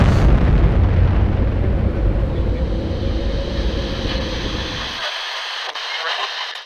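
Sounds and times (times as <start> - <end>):
massive nuclear explosion from a small nuclear device fired from an RPG: 0.0 - 5.1
thin airy hiss trailing after a nuclear explosion: 2.5 - 6.5.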